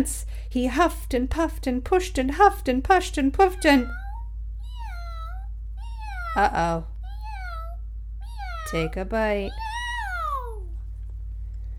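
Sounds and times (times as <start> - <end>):
speech: 0.0 - 4.0, 6.3 - 6.9, 8.7 - 9.7
steady low hum: 0.0 - 11.7
cat meowing: 3.8 - 10.8.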